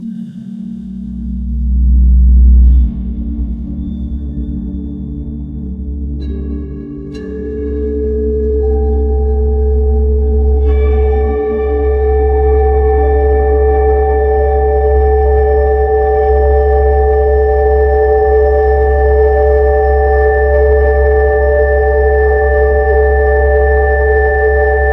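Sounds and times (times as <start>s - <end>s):
ambient meditation music: 0.0s - 24.9s.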